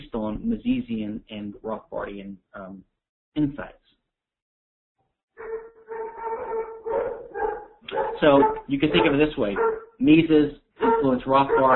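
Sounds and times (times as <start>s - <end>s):
speech: 0.3s - 3.9s, 7.9s - 11.7s
poodles barking and yelping: 5.4s - 10.0s, 10.8s - 11.7s.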